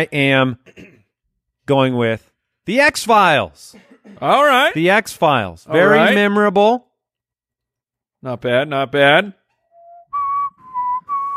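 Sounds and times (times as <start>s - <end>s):
speech: 0.0s - 0.9s, 1.7s - 6.9s, 8.2s - 9.4s
person whistling a tune into microphone: 9.7s - 11.3s.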